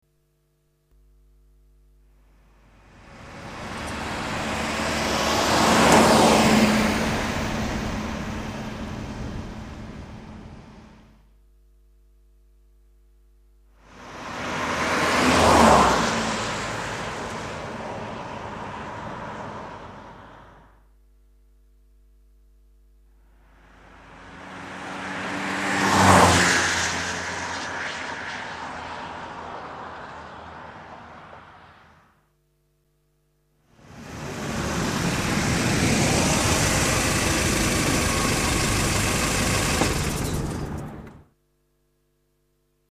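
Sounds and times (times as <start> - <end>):
traffic: 2.2 - 11.3, 13.7 - 20.9, 23.2 - 32.2, 33.7 - 41.3
car passing by: 2.8 - 11.2, 13.8 - 20.7, 23.5 - 32.1, 33.8 - 41.2.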